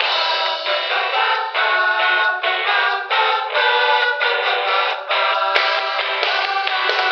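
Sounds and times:
person singing: 0.0 - 7.1.

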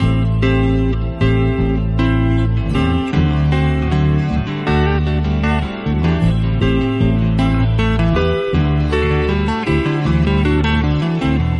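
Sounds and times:
unpredictable phonk guitar loops: 0.0 - 11.5.

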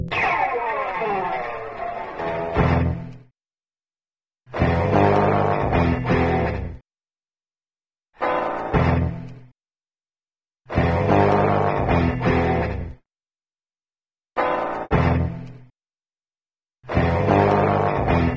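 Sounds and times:
rock and roll guitar: 0.1 - 3.1, 4.5 - 6.8, 8.2 - 9.3, 10.7 - 13.0, 14.4 - 15.4, 16.9 - 18.3.

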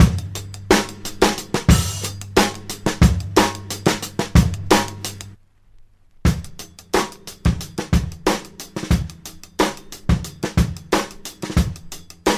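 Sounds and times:
funky staccato drum loops: 0.0 - 5.4, 6.3 - 12.3.

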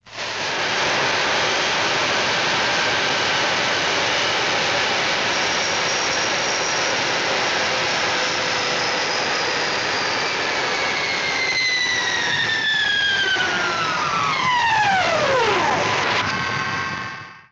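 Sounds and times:
airplane: 0.0 - 17.5.

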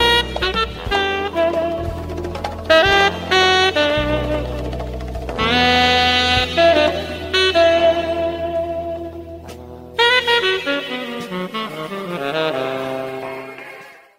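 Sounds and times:
saxophone playing with no rhythm: 0.0 - 14.1.

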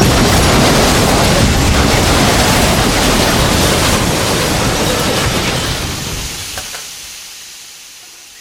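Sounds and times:
train crash: 0.0 - 7.3.

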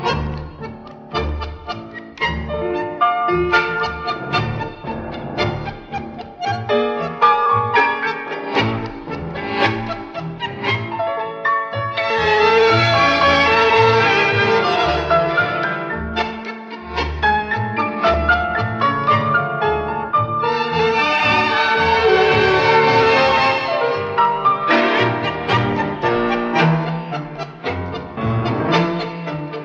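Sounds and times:
piano loop: 0.0 - 29.6.

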